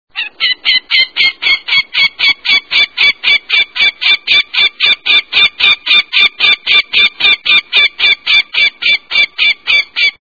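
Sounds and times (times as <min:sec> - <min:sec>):
Northern Goshawk: 0:00.1 - 0:10.2.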